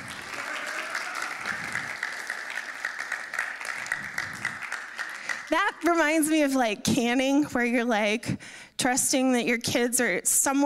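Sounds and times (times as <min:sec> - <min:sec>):
audience applause for mothers: 0:00.0 - 0:05.6
speech: 0:05.5 - 0:10.6.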